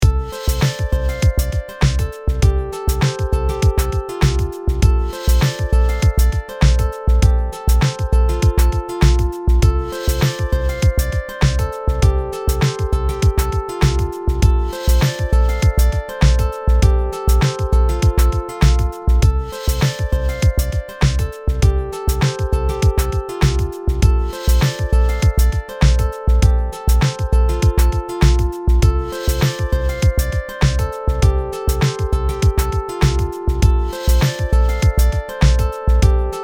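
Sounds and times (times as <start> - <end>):
shimmering arpeggio dry and wet: 0.0 - 36.4.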